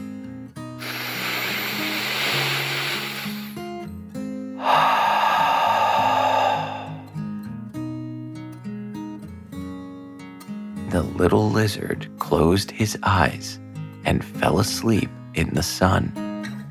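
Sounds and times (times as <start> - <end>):
deep breath in and out: 0.8 - 3.6, 4.6 - 7.2
speech: 11.0 - 16.2.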